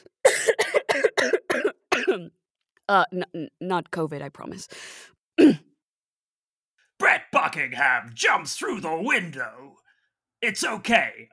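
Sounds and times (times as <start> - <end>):
harsh raspy coughs: 0.1 - 2.3, 5.4 - 5.7
speech: 2.2 - 5.6, 7.3 - 9.8, 10.4 - 11.3.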